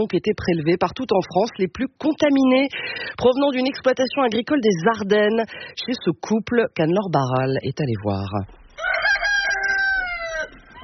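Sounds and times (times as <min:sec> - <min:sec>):
speech: 0:00.0 - 0:09.2
farmyard chicken calling while hens are fed in a village in the Ardennes: 0:08.7 - 0:10.8.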